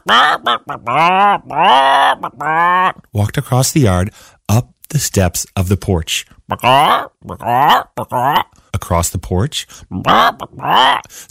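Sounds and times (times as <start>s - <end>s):
person imitating a chicken walking around a farmyard: 0.0s - 3.1s, 6.5s - 8.6s, 9.8s - 11.2s
speech: 0.1s - 11.2s.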